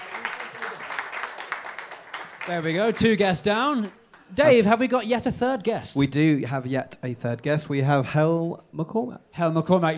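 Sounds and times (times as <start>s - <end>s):
audience applause welcoming a guest: 0.0s - 4.3s
speech: 2.4s - 9.9s.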